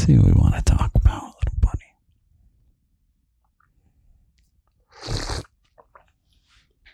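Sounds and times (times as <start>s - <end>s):
speech: 0.1s - 0.7s
small mouth sounds: 4.7s - 6.2s
tea slurp: 4.8s - 6.2s.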